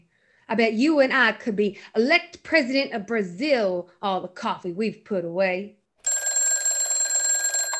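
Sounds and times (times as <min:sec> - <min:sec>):
speech: 0:00.5 - 0:05.8
telephone bell ringing with a rapid metallic trill: 0:06.0 - 0:07.7.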